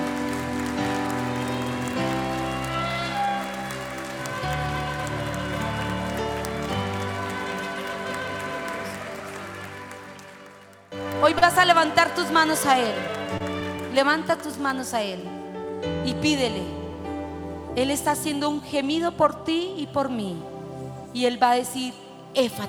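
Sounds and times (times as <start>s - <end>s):
audience clapping: 0.0s - 14.7s
keyboard music holding chords: 0.0s - 21.2s
speech: 11.2s - 13.2s, 14.0s - 16.8s, 17.8s - 20.5s, 21.2s - 22.6s.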